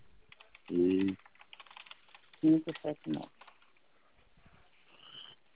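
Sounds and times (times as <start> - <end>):
keys tapped to enter a verification code: 0.3 - 3.8.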